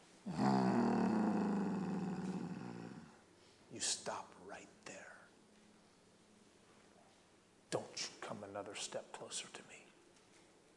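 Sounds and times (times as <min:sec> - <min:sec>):
deep rumbling throaty growl: 0:00.3 - 0:03.2
speech: 0:03.8 - 0:05.2, 0:08.0 - 0:09.9.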